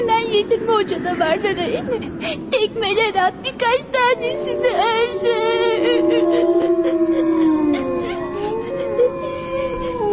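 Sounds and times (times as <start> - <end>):
speech: 0.8 - 7.5
several wolves howling together: 3.9 - 10.1.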